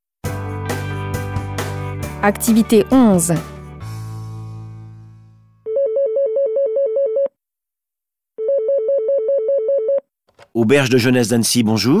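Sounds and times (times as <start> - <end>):
speech: 2.2 - 3.6, 10.6 - 11.9
telephone ringing with warbling electronic trill: 5.6 - 7.3, 8.4 - 10.0.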